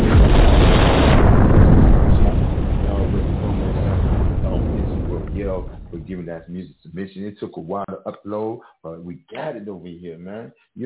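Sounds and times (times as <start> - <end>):
bomb explosion sound effect: 0.0 - 6.4
speech: 6.4 - 10.8.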